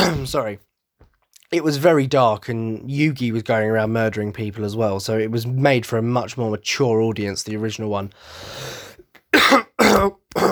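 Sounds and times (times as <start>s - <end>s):
person clearing throat blocked up from hay fever: 0.0s - 0.4s, 9.4s - 10.5s
speech: 0.2s - 0.7s, 1.5s - 10.5s.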